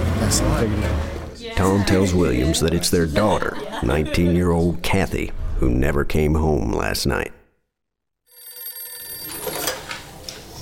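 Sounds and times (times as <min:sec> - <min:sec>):
speech: 0:00.3 - 0:07.4
laughter: 0:01.6 - 0:05.2
telephone bell ringing: 0:08.3 - 0:09.9.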